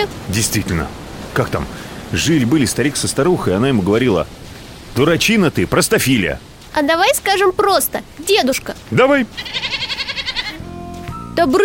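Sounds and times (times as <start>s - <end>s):
speech: 0.0s - 4.4s, 5.0s - 9.6s, 11.4s - 11.6s
goat bleating: 9.2s - 10.7s.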